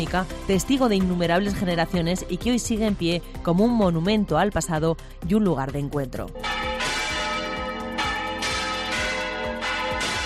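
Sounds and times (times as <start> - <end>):
speech: 0.0 - 6.6
bell of a church built in 1224 ringing in a village in La Rioja: 6.4 - 10.2.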